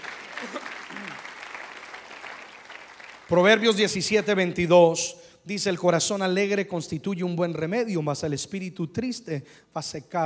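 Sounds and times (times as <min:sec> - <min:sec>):
crowd clapping: 0:00.0 - 0:03.9
speech: 0:03.3 - 0:10.2.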